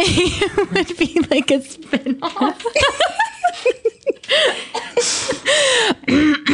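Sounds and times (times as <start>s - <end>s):
laughter: 0.0s - 5.9s
speech: 0.0s - 6.5s
gasping breaths: 4.2s - 6.5s
person in a harsh coughing fit: 6.0s - 6.5s.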